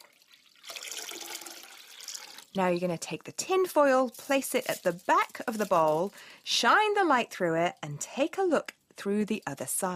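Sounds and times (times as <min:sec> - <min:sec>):
water pouring into a glass bowl of water: 0:00.0 - 0:02.6
speech: 0:02.6 - 0:09.9.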